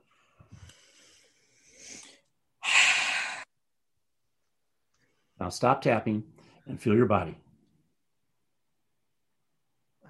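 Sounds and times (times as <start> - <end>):
faint soft breathing: 0.0 - 3.5
deep breath blown out: 0.5 - 3.5
speech: 5.4 - 7.4.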